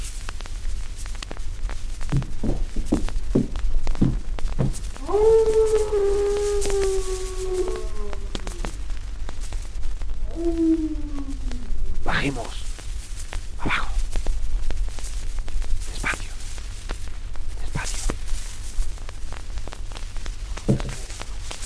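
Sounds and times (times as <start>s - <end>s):
constant hiss: 0.0s - 21.6s
short low thumps: 2.0s - 9.0s
dog howling: 5.0s - 8.8s, 10.2s - 12.6s.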